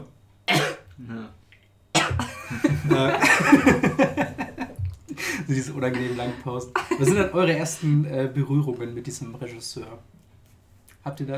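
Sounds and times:
person coughing and clearing throat: 0:00.5 - 0:00.9, 0:02.0 - 0:02.6, 0:06.0 - 0:07.2
speech: 0:00.5 - 0:01.4, 0:02.1 - 0:03.9, 0:05.5 - 0:10.2, 0:11.0 - 0:11.3
laughter: 0:02.4 - 0:07.8.

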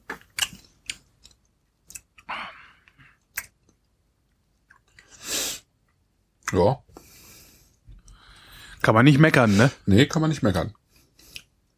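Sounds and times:
wet mouth clicks and smacks while sipping wine during a tasting: 0:00.1 - 0:02.3, 0:03.2 - 0:05.1
speech: 0:06.5 - 0:06.9, 0:08.8 - 0:10.8.

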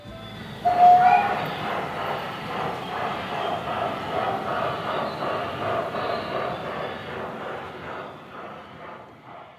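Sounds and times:
high whistle-like tone: 0:00.0 - 0:01.6
gauge 2 model railway train running at a railway museum in the Black Forest: 0:00.0 - 0:09.5.

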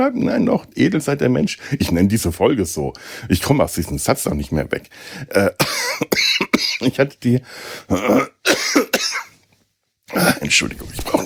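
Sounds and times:
speech: 0:00.0 - 0:09.3, 0:10.1 - 0:11.2
person coughing: 0:05.5 - 0:07.1, 0:07.9 - 0:09.4.

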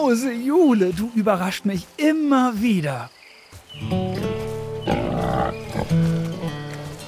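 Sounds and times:
speech: 0:00.0 - 0:04.1
piglets scuffling: 0:00.5 - 0:07.0
piglets grunting and squealing while eating: 0:04.9 - 0:06.0.

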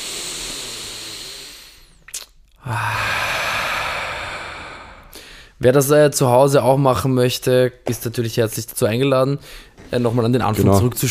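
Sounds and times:
deep breath in and out: 0:00.0 - 0:02.0, 0:02.6 - 0:05.6, 0:09.4 - 0:09.8
speech: 0:05.6 - 0:11.0.

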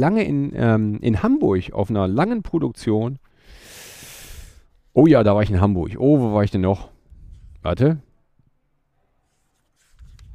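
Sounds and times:
speech: 0:00.0 - 0:03.6, 0:05.0 - 0:06.9, 0:07.6 - 0:08.1
pages of a paper calendar being turned: 0:09.3 - 0:10.3.

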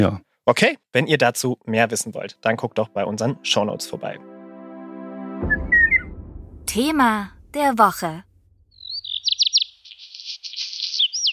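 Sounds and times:
speech: 0:00.0 - 0:04.3, 0:05.4 - 0:05.7, 0:06.7 - 0:08.3
Black redstart song: 0:01.7 - 0:09.5.

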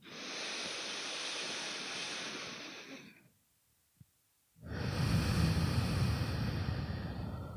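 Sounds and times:
slow alternate nostril breathing through the nose: 0:00.0 - 0:03.2, 0:04.6 - 0:07.5.

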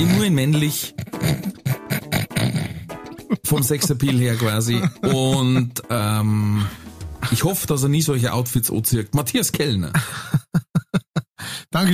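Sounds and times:
speech: 0:00.0 - 0:01.4, 0:03.5 - 0:10.4, 0:11.8 - 0:11.9
laughter: 0:00.0 - 0:06.3
man growling like a bear: 0:00.9 - 0:02.9.

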